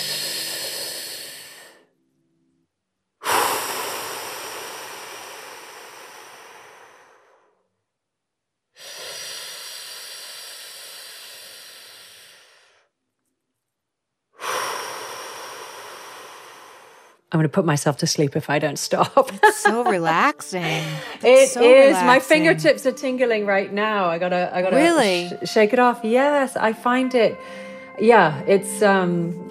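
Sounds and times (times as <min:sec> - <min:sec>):
long slow deep breathing, inhales and exhales: 0:03.2 - 0:07.7, 0:08.8 - 0:12.9, 0:14.4 - 0:17.3, 0:20.6 - 0:21.3
speech: 0:17.3 - 0:29.5
laughter: 0:19.0 - 0:22.7.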